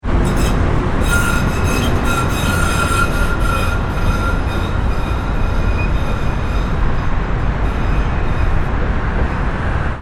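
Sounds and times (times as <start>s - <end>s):
brakes: 0.1s - 9.5s.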